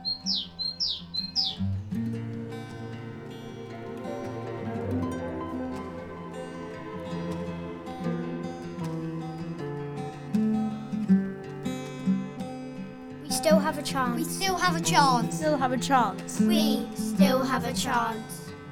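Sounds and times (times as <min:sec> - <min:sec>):
bird singing sweeping siren-like notes: 0:00.0 - 0:11.2
steady sustained musical drone: 0:00.0 - 0:13.2
speech: 0:13.4 - 0:18.4.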